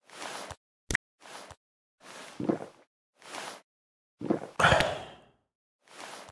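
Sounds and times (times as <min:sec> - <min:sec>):
drinking from a flask: 0:04.6 - 0:05.3.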